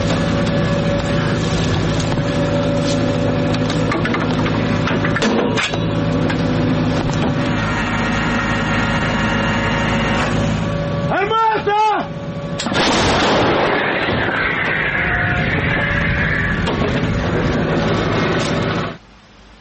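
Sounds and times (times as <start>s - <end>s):
rising whines: 0.0s - 19.1s
engine droning: 0.0s - 19.5s
artillery salvos firing: 12.6s - 15.2s.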